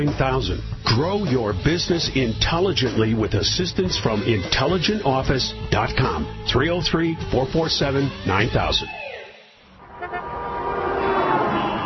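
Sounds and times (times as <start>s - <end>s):
speech: 0.0s - 9.0s
car horns honking in heavy highway traffic: 9.8s - 11.8s.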